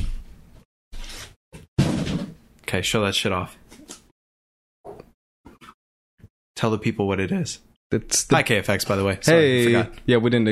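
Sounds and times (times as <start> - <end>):
box knocked onto the ground thudding: 1.8 - 2.4
speech: 2.7 - 3.6, 6.6 - 10.5.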